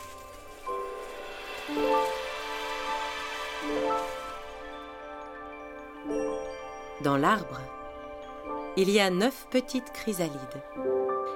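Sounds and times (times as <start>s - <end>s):
soft hissing wash: 0.0s - 5.5s
shimmering magical sprinkle of twinkling tones: 0.0s - 10.6s
bright sustained chimes: 0.0s - 11.3s
speech: 7.0s - 7.8s, 8.8s - 10.9s.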